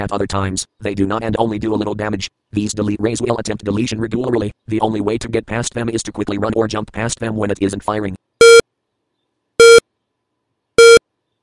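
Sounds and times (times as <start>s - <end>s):
speech: 0.0s - 8.2s
loud sharp electronic time bomb timer beeps from a video game: 8.4s - 8.6s, 9.6s - 9.8s, 10.8s - 11.0s.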